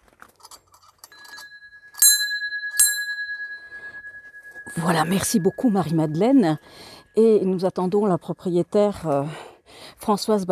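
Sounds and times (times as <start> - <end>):
metallic clanks and rattles: 0.2 - 4.7
bell being rung at castle gate: 1.0 - 6.9
speech: 4.7 - 9.4, 10.0 - 10.4.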